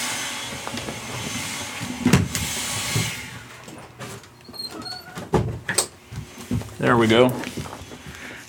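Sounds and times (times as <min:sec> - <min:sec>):
speech: 0:00.5 - 0:01.4, 0:06.8 - 0:07.6
office door pushed shut with a solid thump: 0:02.0 - 0:03.1.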